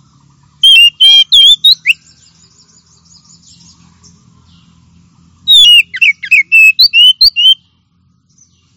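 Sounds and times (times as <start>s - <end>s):
Oriental magpie-robin song: 0.6s - 3.8s, 5.4s - 7.7s.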